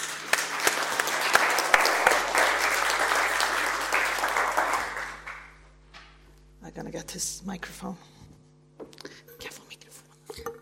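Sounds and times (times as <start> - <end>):
audience applause welcoming a university professor in Stockholm Sweden: 0.0 - 5.7
speech: 7.1 - 8.1.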